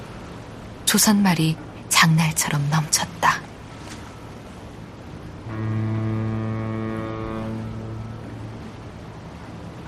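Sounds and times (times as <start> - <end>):
harbor ambience hum: 0.0 - 9.8
speech: 0.9 - 3.4
ship's foghorn blast at a harbor: 4.6 - 9.8.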